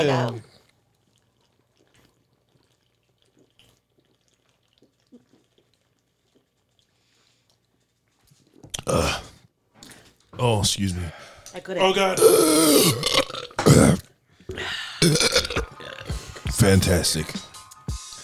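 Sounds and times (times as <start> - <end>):
speech: 0.0 - 0.5, 8.8 - 9.2, 10.4 - 13.9, 14.5 - 15.5, 16.6 - 17.5
people gulping while chugging beers: 0.0 - 17.6
heavy gasp: 11.1 - 11.5, 13.7 - 15.0.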